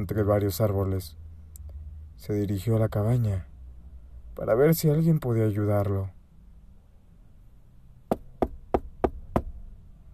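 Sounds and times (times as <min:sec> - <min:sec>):
speech: 0:00.0 - 0:01.2, 0:02.2 - 0:03.5, 0:04.4 - 0:06.2
firm knocks on a wooden door: 0:08.1 - 0:09.5.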